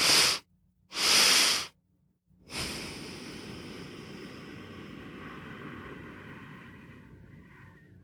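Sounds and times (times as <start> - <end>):
long slow exhale hissing softly: 0.0 - 1.7, 2.5 - 6.6
sharp inhales for calming and stress relief: 0.0 - 1.8, 2.5 - 5.2.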